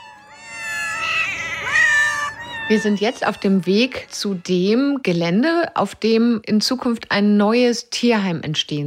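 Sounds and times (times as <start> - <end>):
several cats meowing loudly demanding food: 0.0 - 4.1
speech: 2.7 - 8.8.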